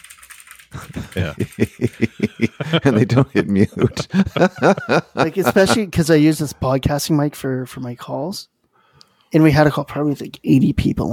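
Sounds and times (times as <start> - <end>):
voice imitating mechanical keyboard typing with clacky mouth sounds: 0.0 - 2.2
laughter: 0.7 - 5.9
speech: 1.2 - 8.5, 9.3 - 11.1.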